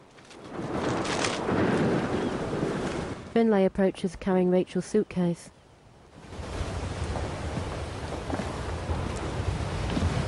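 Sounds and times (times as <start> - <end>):
raging wind: 0.0 - 4.7, 5.5 - 10.2
speech: 3.4 - 5.6
stormy sea pounding against the shore: 6.2 - 10.2.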